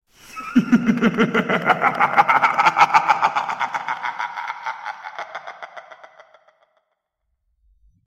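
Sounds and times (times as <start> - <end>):
scary laugh: 0.2 - 7.0.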